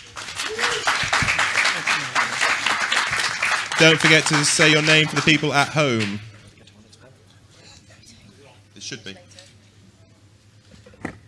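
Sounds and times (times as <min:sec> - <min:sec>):
room full of people applauding: 0:00.0 - 0:06.4
speech: 0:03.8 - 0:06.3.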